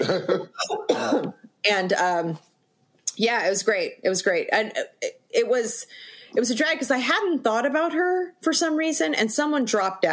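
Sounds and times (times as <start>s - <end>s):
man clearing throat: 0.0s - 1.4s
man coughing: 0.0s - 1.4s
speech: 0.0s - 2.5s, 3.2s - 10.1s.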